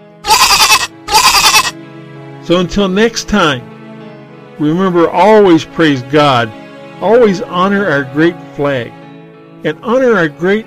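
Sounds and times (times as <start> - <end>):
goat bleating: 0.2 - 1.8
speech: 2.4 - 3.7, 4.6 - 9.0, 9.6 - 10.6.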